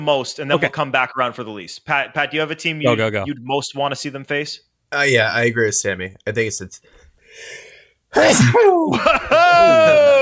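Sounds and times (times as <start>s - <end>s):
speech: 0.0s - 10.2s
sneeze: 8.1s - 8.9s.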